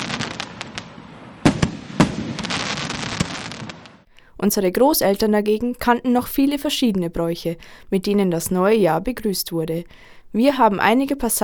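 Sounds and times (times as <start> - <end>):
New Year fireworks rockets and firecrackers crackling: 0.0 - 4.1
sharp loud firework bangs: 0.0 - 4.1
speech: 4.4 - 11.4.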